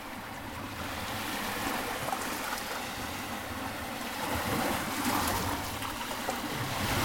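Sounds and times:
sea waves at the shore: 0.0 - 7.0.

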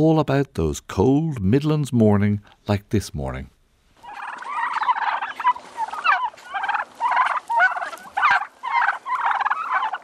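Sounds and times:
speech: 0.0 - 3.6
flock of heritage black turkeys gobbling: 4.0 - 10.0.

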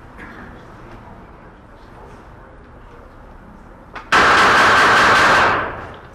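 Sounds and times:
sidearm pistol fired rapidly from the hip on a firing range: 4.1 - 5.8.

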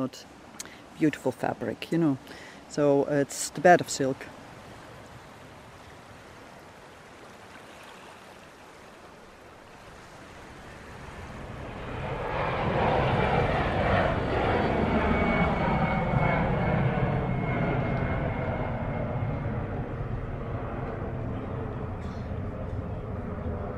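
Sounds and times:
speech: 0.0 - 0.4, 1.0 - 4.4
aircraft engine roar at an airport: 0.2 - 23.7.

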